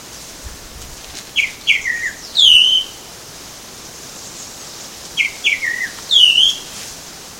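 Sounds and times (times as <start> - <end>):
tropical mockingbird Mimus gilvus singing at Baby Beach in Aruba: 1.3 - 3.0, 5.2 - 6.7.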